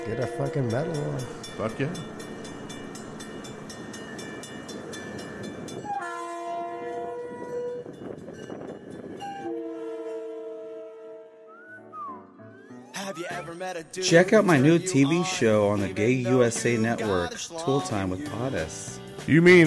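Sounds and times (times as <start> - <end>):
speech: 0.0 - 2.4, 13.9 - 19.6
train rumbling and clattering on the tracks: 0.0 - 11.1
train whistle blowing in chord-like blasts: 5.8 - 7.9, 9.2 - 12.2.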